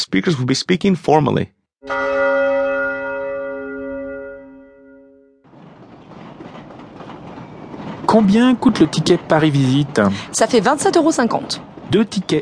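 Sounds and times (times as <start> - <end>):
speech: 0.1 - 2.1, 8.1 - 12.3
bright ringing chime in a subway station: 1.8 - 5.4
subway train rumble: 5.5 - 12.3.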